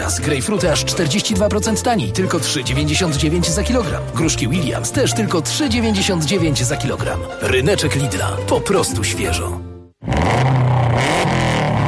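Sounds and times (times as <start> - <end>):
speech: 0.1 - 9.7
280-horsepower rally car engine revving: 10.0 - 11.8.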